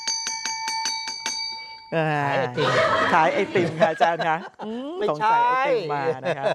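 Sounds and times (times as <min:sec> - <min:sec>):
small bell ringing: 0:00.0 - 0:02.3
speech: 0:01.9 - 0:06.5
laughter: 0:02.4 - 0:06.5.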